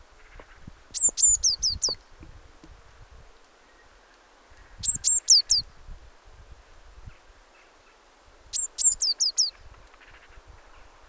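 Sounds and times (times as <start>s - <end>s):
Eurasian blue tit Cyanistes caeruleus calls: 0.2s - 2.2s, 3.6s - 5.7s, 7.1s - 10.9s
soft low rustling and knocking: 2.2s - 3.1s.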